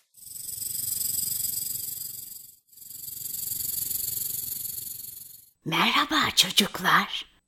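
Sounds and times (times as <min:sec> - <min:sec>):
snake hissing: 0:00.0 - 0:05.6
speech: 0:05.6 - 0:07.3.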